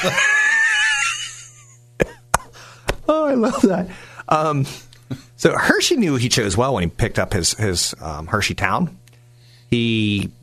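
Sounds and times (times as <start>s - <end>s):
speech: 0.0s - 0.3s, 3.3s - 9.0s, 9.7s - 10.4s
voice imitating a cartoon dog's wheezing cough-like laugh: 0.0s - 2.7s.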